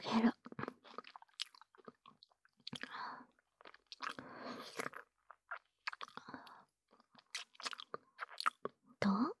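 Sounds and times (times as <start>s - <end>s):
person crunching and chewing an apple: 0.4s - 2.9s, 3.6s - 6.3s, 6.9s - 8.7s.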